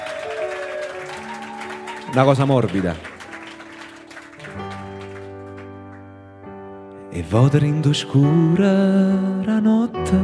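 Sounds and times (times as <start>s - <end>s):
audience applause: 0.0s - 6.2s
speech: 2.1s - 3.1s, 7.2s - 10.2s.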